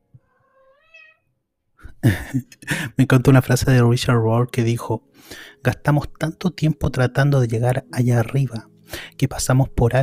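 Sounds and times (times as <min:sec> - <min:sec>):
female cat meowing: 0:00.2 - 0:01.3
laughter: 0:02.0 - 0:02.9
speech: 0:02.0 - 0:10.0.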